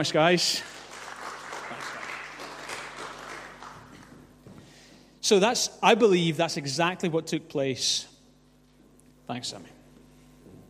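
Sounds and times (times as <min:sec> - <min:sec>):
speech: 0:00.0 - 0:00.8, 0:05.3 - 0:08.1, 0:09.3 - 0:09.8
audience applause for volunteers: 0:00.6 - 0:04.2.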